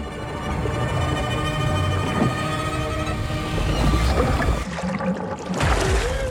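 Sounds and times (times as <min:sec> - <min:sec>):
steady tonal drone: 0:00.0 - 0:04.6
water splashing and sloshing as a man surfaces in a bathtub: 0:00.3 - 0:06.2.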